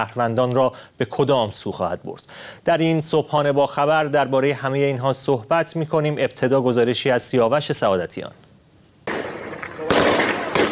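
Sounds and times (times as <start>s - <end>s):
speech: 0.0s - 8.5s
gunfire at protesters during fuel-price protests in Behbahan, Khuzestan province: 9.1s - 10.7s.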